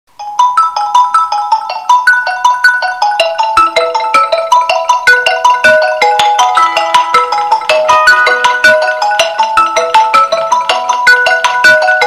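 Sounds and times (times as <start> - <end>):
phone remix ringtone: 0.2 - 12.0.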